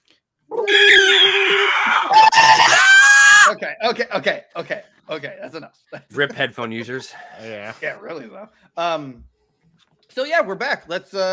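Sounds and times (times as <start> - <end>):
human voice screeching in victory: 0.5 - 3.6
person yelping: 0.5 - 3.6
speech: 3.6 - 9.3, 10.1 - 11.3.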